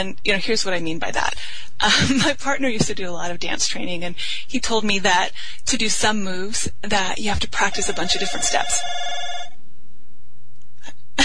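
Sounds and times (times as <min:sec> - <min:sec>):
speech: 0:00.0 - 0:09.2
electronic telephone ring: 0:07.7 - 0:09.6.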